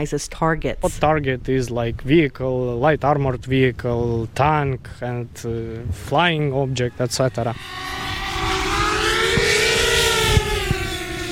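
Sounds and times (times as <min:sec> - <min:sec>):
speech: 0:00.0 - 0:08.0
combat drone high-pitched motor whine: 0:06.3 - 0:11.3.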